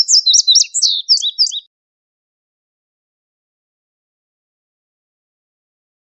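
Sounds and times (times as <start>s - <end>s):
indigo bunting singing: 0.0s - 1.7s.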